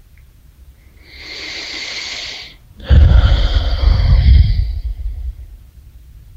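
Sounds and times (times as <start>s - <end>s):
deep breath in and out during a guided breathing exercise: 1.0s - 5.7s.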